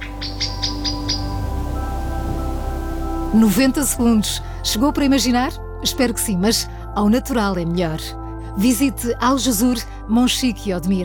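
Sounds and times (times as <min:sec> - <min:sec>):
bird chirping in a cork oak forest in the Serra de Monchique at first light: 0:00.0 - 0:03.1
speech: 0:03.3 - 0:11.0.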